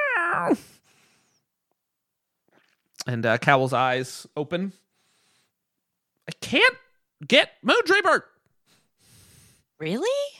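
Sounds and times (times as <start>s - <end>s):
person imitating a cat meow: 0.0s - 0.7s
speech: 0.2s - 0.9s, 3.1s - 4.8s, 6.4s - 8.3s, 9.8s - 10.3s.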